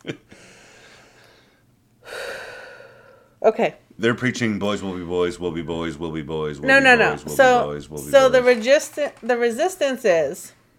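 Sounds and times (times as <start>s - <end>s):
deep breath: 0.3s - 3.4s
speech: 3.4s - 10.6s.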